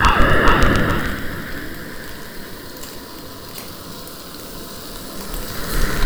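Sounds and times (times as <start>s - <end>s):
fireball: 0.0s - 3.4s.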